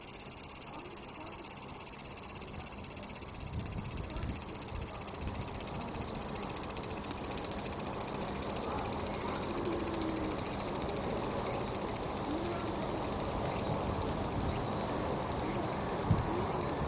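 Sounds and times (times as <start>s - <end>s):
large brown cicada high-pitched frying drone: 0.0s - 16.8s.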